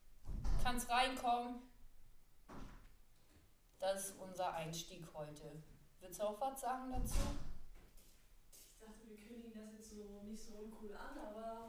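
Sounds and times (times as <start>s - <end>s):
door opening and closing: 0.2s - 0.8s, 2.5s - 3.0s, 6.9s - 7.8s
speech: 0.7s - 1.7s, 3.8s - 7.5s, 8.8s - 11.6s.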